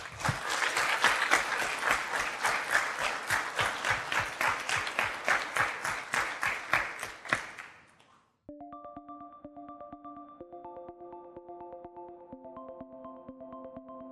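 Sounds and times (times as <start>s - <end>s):
audience applause: 0.0s - 7.8s.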